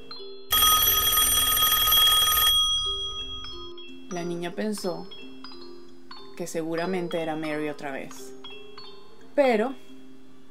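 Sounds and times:
old-style telephone bell ringing: 0:00.5 - 0:03.7
speech: 0:04.1 - 0:05.2, 0:06.4 - 0:08.3, 0:09.4 - 0:09.9.

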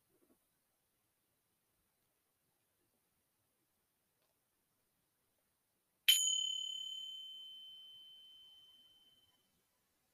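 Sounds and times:
meditation bell chime: 0:06.1 - 0:09.5.

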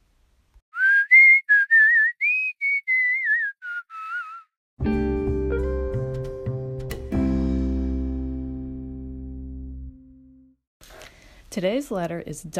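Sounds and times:
person whistling a bright bouncy tune: 0:00.7 - 0:04.6
sustained instrumental chord: 0:04.8 - 0:10.5
speech: 0:11.6 - 0:12.5.

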